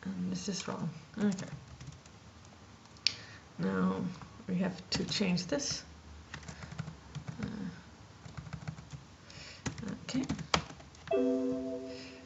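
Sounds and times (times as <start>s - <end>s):
speech: 0.4s - 1.7s, 3.6s - 5.9s, 10.1s - 10.4s
typing on a computer keyboard: 1.2s - 2.2s, 6.3s - 9.0s, 9.6s - 11.1s
steady electronic tone: 11.1s - 12.2s.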